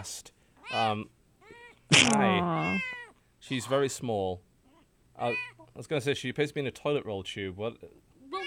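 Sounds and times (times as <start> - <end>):
speech: 0.0 - 1.2, 1.9 - 4.5, 5.2 - 8.1
small kitten in a cast meowing: 1.4 - 3.1.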